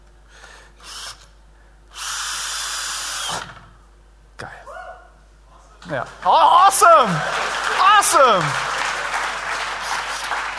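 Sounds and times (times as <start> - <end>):
power drill fitted with a bit driving a screw: 0.8 - 1.2, 1.9 - 3.6
speech: 5.9 - 8.6.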